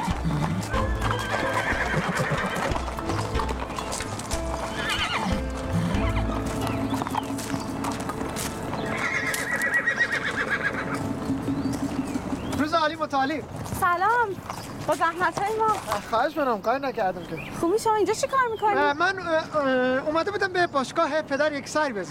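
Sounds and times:
horse hooves clip-clopping: 0.0 - 18.8
horse neighing: 0.2 - 3.3, 4.6 - 7.3, 8.8 - 11.4
speech: 13.2 - 22.0.

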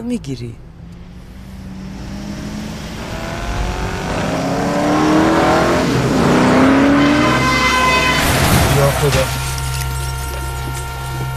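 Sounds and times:
speech: 0.0 - 0.6
car engine revving and accelerating: 0.6 - 11.3.

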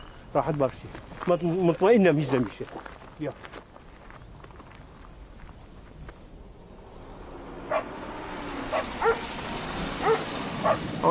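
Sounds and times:
hum: 0.0 - 11.1
speech: 0.4 - 3.5
dogs barking: 7.7 - 7.9, 8.7 - 9.2, 10.0 - 10.9.

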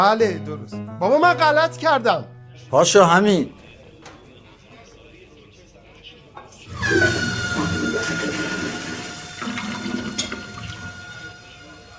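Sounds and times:
speech: 0.0 - 3.6
toilet flushing: 6.6 - 11.9.

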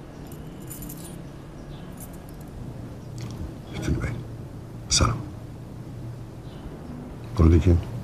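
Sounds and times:
keys jangling as they are handed over: 0.2 - 1.3, 1.9 - 2.6
speech: 7.4 - 7.9.

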